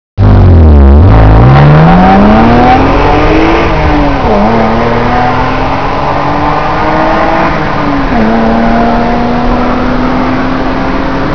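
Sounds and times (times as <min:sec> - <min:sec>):
Ferrari F40 engine: 0:00.2 - 0:11.3.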